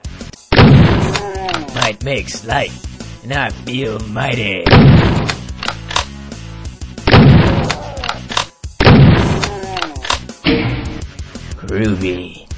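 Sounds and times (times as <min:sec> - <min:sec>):
loud driving video game music: 0:00.0 - 0:12.5
shotgun firing in a video game: 0:00.5 - 0:01.8, 0:04.6 - 0:06.1, 0:07.0 - 0:10.3
speech: 0:01.9 - 0:05.4, 0:11.7 - 0:12.4.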